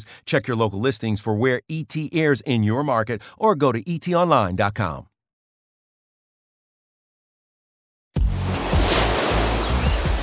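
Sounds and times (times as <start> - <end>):
speech: 0.0 - 5.1
ocean waves breaking on a beach: 8.2 - 10.2.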